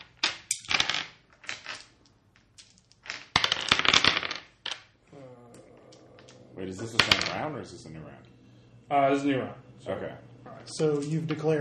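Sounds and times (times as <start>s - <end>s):
dice clattering across a hard tabletop: 0.0s - 5.0s, 6.2s - 7.4s
speech: 6.6s - 8.3s, 8.9s - 11.5s.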